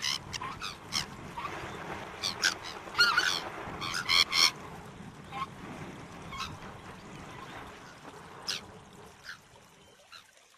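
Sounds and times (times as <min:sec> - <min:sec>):
Sabine's gull uttering rasping calls: 0:00.0 - 0:04.6.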